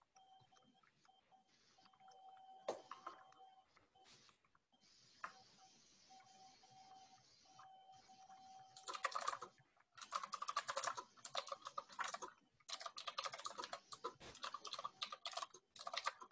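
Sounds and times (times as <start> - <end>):
faint steady hum: 0.0 - 12.7
typing on a computer keyboard: 8.7 - 16.3.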